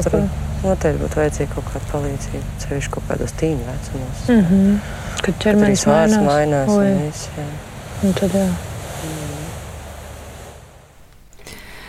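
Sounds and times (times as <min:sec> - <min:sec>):
speech: 0:00.0 - 0:09.4
faint tonal whines: 0:00.0 - 0:09.6
sea waves washing on a shore: 0:07.0 - 0:11.8.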